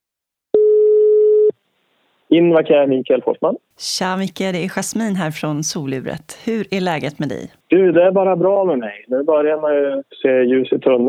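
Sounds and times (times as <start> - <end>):
telephone ringing tone while placing an outgoing call: 0.6 - 1.5
speech: 2.3 - 11.0.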